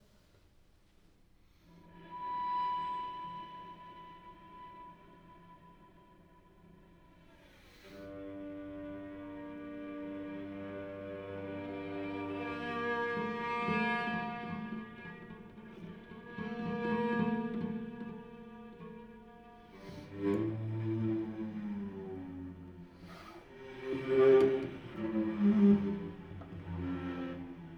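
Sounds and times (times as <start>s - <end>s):
cello: 1.4s - 27.7s.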